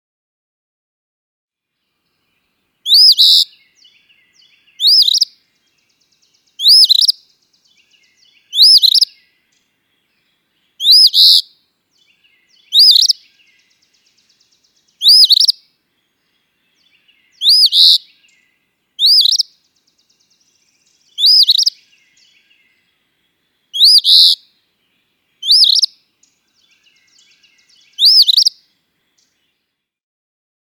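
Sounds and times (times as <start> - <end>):
Eastern phoebe calling: 2.8 - 5.4, 6.6 - 7.2, 7.8 - 9.2, 10.8 - 11.5, 12.4 - 13.8, 15.0 - 15.6, 17.0 - 18.4, 19.0 - 19.5, 21.1 - 22.6, 23.7 - 24.4, 25.4 - 26.0, 26.9 - 28.6.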